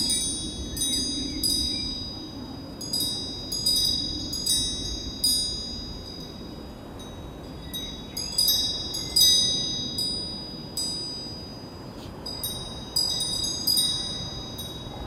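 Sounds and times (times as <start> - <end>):
wind chimes ringing in a light breeze outdoors in a field: 0.0 - 15.0.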